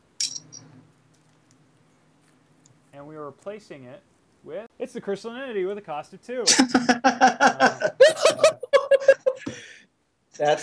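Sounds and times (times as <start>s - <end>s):
bright shimmering clink of a card shuffled into a deck: 0.2s - 0.7s
speech: 3.0s - 8.2s, 10.4s - 10.6s
laughter: 6.2s - 9.7s.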